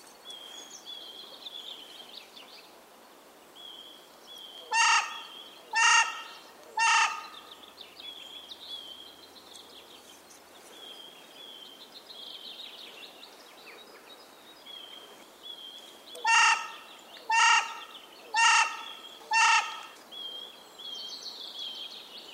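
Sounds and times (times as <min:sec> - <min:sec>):
carrion crow giving harsh hoarse caws: 0:04.7 - 0:05.2, 0:05.8 - 0:07.4, 0:16.2 - 0:20.0.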